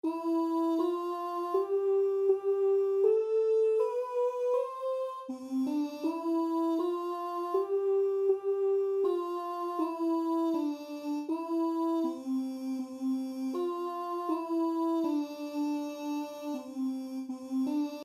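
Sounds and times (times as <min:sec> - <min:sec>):
voice: 0:00.0 - 0:18.0.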